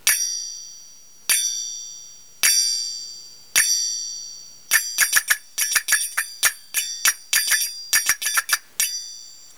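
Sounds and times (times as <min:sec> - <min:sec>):
thin zills: 0:04.7 - 0:09.0.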